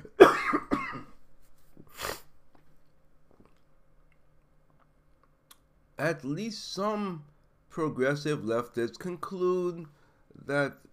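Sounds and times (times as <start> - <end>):
person coughing: 0.0 - 1.2
speech: 6.0 - 10.9.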